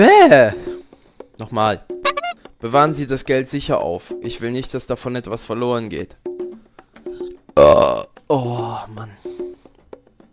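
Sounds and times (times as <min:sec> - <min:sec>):
speech: 0:00.0 - 0:00.6, 0:01.4 - 0:01.9, 0:02.6 - 0:06.3, 0:07.6 - 0:09.4
person burping: 0:07.6 - 0:08.2.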